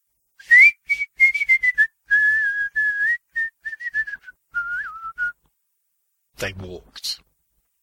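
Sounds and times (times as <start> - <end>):
person whistling a bouncy carnival-style calliope melody: 0.4 - 5.4
speech: 6.4 - 7.3.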